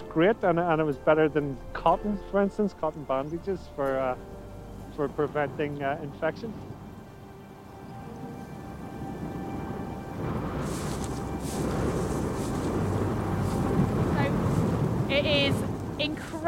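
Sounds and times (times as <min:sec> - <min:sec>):
speech: 0:00.2 - 0:04.4, 0:05.0 - 0:06.7, 0:15.2 - 0:16.4
heavy wind buffeting the microphone: 0:03.4 - 0:16.4
brief faint rustles: 0:10.2 - 0:16.4.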